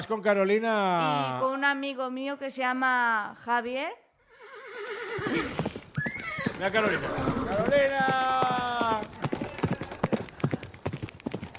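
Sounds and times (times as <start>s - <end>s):
speech: 0.0s - 4.0s, 4.8s - 5.8s, 6.6s - 8.6s
horse hooves clip-clopping: 5.2s - 11.5s.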